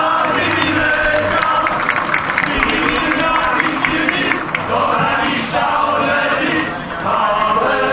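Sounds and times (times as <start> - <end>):
large audience applauding: 0.0 - 7.8.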